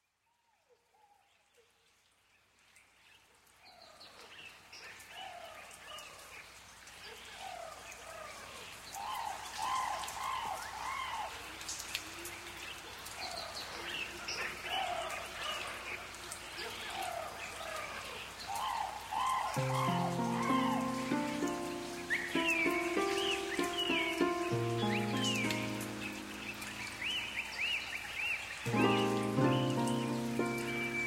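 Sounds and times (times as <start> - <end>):
jungle rainforest ambience: 0.0 - 31.0.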